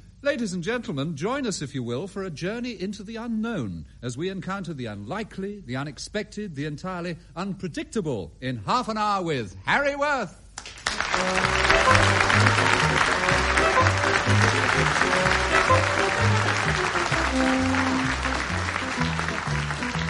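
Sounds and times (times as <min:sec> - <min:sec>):
speech: 0:00.2 - 0:12.6
large audience applause: 0:10.6 - 0:20.0
simple band tune: 0:11.0 - 0:20.0.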